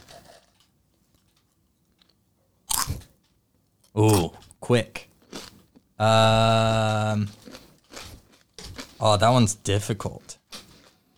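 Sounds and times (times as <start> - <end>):
crunchy bite into a crisp snack: 2.7 - 3.1, 4.0 - 4.4, 5.2 - 5.9, 6.6 - 9.1, 10.3 - 11.1
speech: 4.0 - 5.1, 6.0 - 7.4, 9.0 - 10.2.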